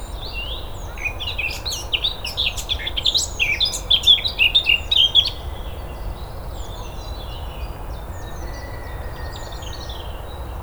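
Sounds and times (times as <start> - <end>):
Eurasian blackcap Sylvia atricapilla song: 0.0 - 5.6.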